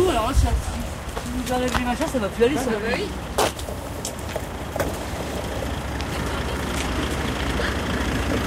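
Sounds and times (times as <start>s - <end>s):
people talking: 0.0s - 3.6s
small car engine running as vehicle drives out of shed: 3.0s - 8.4s.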